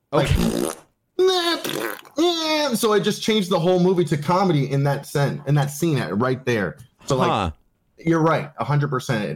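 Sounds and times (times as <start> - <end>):
speech: 0.1 - 0.8, 1.8 - 9.3
farting sounds: 0.2 - 2.2.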